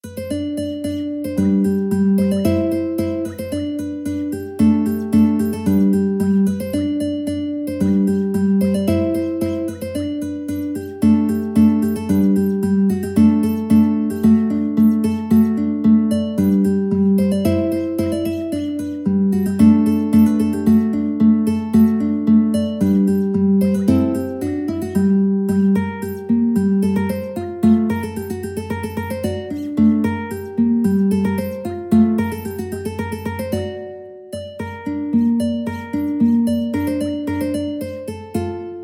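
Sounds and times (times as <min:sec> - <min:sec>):
mandolin: 0:00.0 - 0:38.8.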